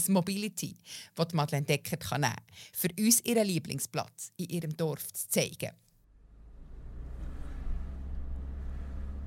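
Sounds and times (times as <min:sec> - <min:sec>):
speech: 0:00.0 - 0:05.8
vehicle passing with engine and tire noise: 0:06.1 - 0:09.2
low steady rumble of road traffic: 0:06.2 - 0:09.2.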